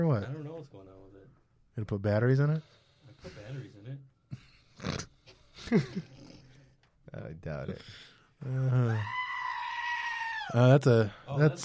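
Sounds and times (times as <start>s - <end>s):
speech: 0.0s - 0.8s, 1.8s - 4.1s, 5.7s - 6.1s, 7.1s - 9.2s, 10.5s - 11.6s
goat screaming with short harsh bleats: 8.9s - 10.7s.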